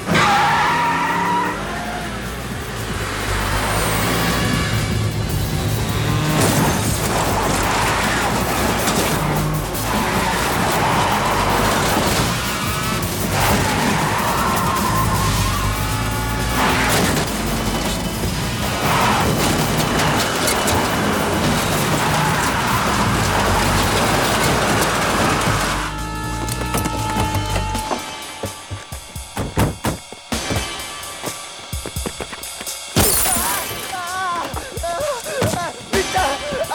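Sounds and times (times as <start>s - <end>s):
powerful 1400-horsepower car engine roaring and revving: 0.0s - 33.2s
car tires squealing and skidding: 0.0s - 36.7s
laughter: 33.8s - 36.7s.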